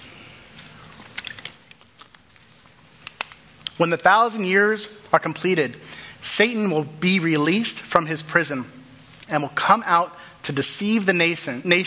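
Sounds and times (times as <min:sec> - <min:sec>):
person sipping water: 0:00.0 - 0:03.0
low hum: 0:00.0 - 0:11.8
soft wet mouth clicks: 0:00.6 - 0:02.2
speech: 0:03.8 - 0:11.8.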